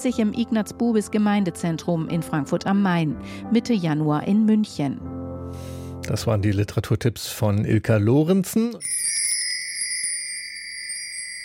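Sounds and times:
speech: 0.0 - 9.2
small Advent calendar bells ringing: 8.8 - 11.4.

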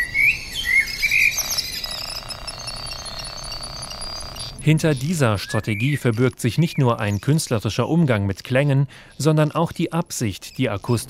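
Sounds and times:
partly synthetic high thin bird-like chirps and whistles: 0.0 - 7.3
speech: 4.6 - 11.0.

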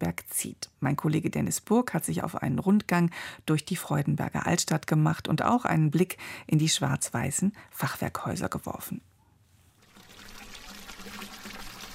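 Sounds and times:
speech: 0.0 - 9.1
water splashing and trickling from a small fountain: 9.8 - 11.9.

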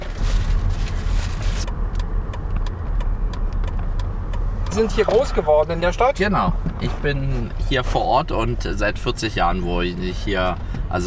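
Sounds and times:
car engine and road rumble heard from inside while driving through a town: 0.0 - 11.0
faint ticking: 1.7 - 5.4
speech: 4.8 - 11.0.

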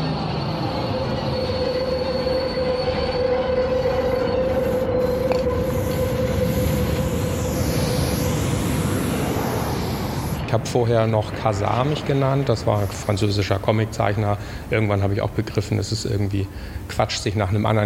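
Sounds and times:
faint high train wheel squeal: 0.0 - 10.4
sustained metallic whine of a train: 0.0 - 17.8
train rumbling along rails: 0.0 - 17.8
speech: 10.6 - 17.8.

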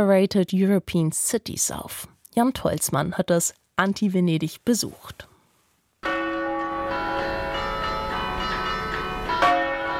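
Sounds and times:
speech: 0.0 - 5.3
cathedral bells ringing over a city square: 6.0 - 9.9.

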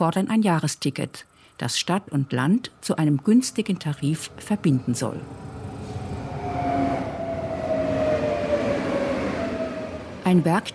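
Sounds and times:
speech: 0.0 - 5.6, 10.3 - 10.7
commuter train pulling into station: 3.3 - 10.7.

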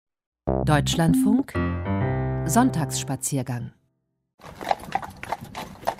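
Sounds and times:
speech: 0.7 - 1.9, 2.5 - 3.8
hooves of two Mecklenburger horses pulling a carriage along a street: 4.4 - 5.9.

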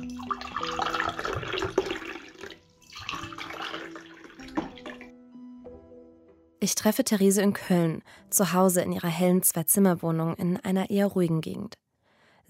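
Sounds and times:
water pouring and splashing: 0.0 - 5.1
speech: 6.6 - 11.8.

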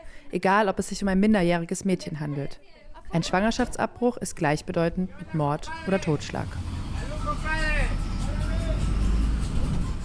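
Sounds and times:
speech: 0.3 - 7.6
crowded bus engine rumbling in San Salvador traffic: 5.6 - 10.0.

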